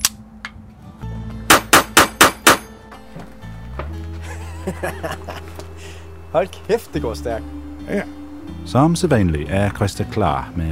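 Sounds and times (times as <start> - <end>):
pistol shots at a shooting range: 1.5 - 2.7
laughter: 4.2 - 5.8
speech: 4.7 - 5.5, 6.3 - 10.6.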